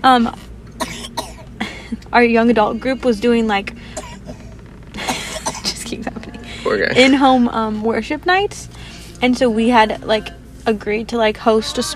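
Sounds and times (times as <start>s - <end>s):
speech: 0.0s - 0.5s, 2.1s - 3.8s, 5.9s - 11.9s
child coughing: 0.8s - 1.8s, 3.9s - 5.8s.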